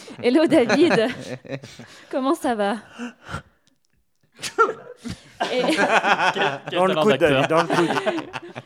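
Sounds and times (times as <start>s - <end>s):
laughter: 0.1s - 1.9s, 4.4s - 8.6s
speech: 0.1s - 3.5s, 4.4s - 8.6s
sharp sneezes: 4.4s - 4.9s.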